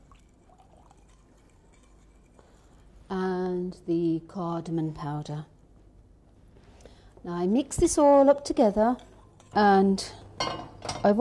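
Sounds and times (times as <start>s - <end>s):
rose water pouring into a bowl of sugar, water and saffron mixture: 0.0s - 2.9s
low hum: 0.0s - 11.1s
speech: 3.1s - 5.5s, 7.2s - 11.1s.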